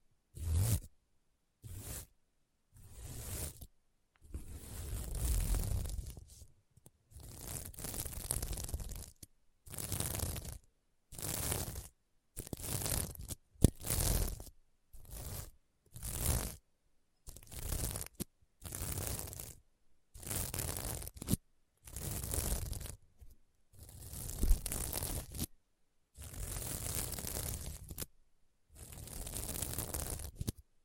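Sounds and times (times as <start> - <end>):
scratching across a sequin mermaid pillow: 0.4 - 0.9, 1.6 - 2.1, 2.8 - 3.7, 4.3 - 6.5, 7.1 - 16.6, 17.3 - 19.6, 20.2 - 23.0, 23.8 - 25.5, 26.2 - 28.1, 28.8 - 30.6.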